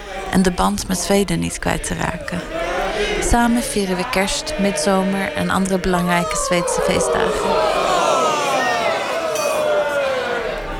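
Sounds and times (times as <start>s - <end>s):
party crowd chattering at a Swedish club's annual crayfish party: 0.0s - 10.7s
speech: 0.3s - 7.8s
party crowd laughing: 2.4s - 10.7s
glasses clinking: 9.4s - 10.0s.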